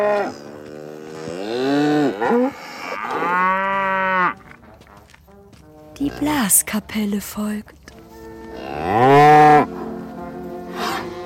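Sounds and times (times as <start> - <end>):
cows mooing as they run outside: 0.0 - 4.7, 5.8 - 6.5, 8.0 - 11.2
speech: 6.2 - 7.8.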